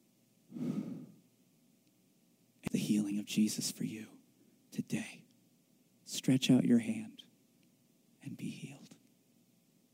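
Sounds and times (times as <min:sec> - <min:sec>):
person exhaling during a church healing service: 0:00.5 - 0:01.2
speech: 0:02.9 - 0:04.2, 0:04.8 - 0:05.2, 0:06.3 - 0:07.2.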